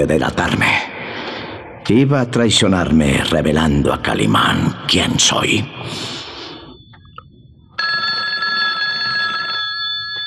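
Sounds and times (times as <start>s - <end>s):
speech: 0.0s - 0.9s, 1.9s - 6.2s
old-fashioned telephone bell ringing: 7.8s - 10.2s.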